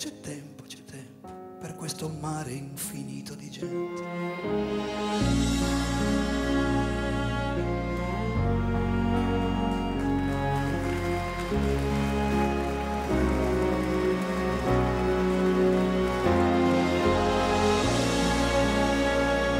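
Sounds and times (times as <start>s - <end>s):
musical backing: 0.0s - 19.5s
speech: 1.9s - 5.4s
rain falling: 8.9s - 19.5s.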